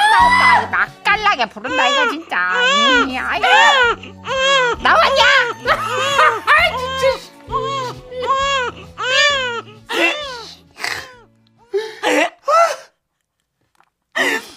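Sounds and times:
newborn baby crying: 0:00.0 - 0:01.0, 0:01.6 - 0:11.3
speech: 0:01.4 - 0:06.0
laughter: 0:04.9 - 0:07.2, 0:09.9 - 0:10.4.

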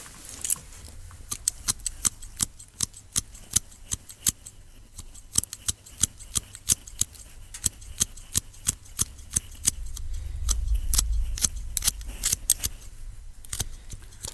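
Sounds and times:
scissors cutting and trimming hair: 0:01.2 - 0:14.3
soft low rumble: 0:08.5 - 0:14.3.

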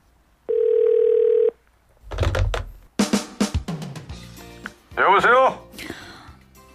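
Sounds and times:
telephone ringback tone of an outgoing call: 0:00.5 - 0:01.6
speech: 0:05.0 - 0:05.6.

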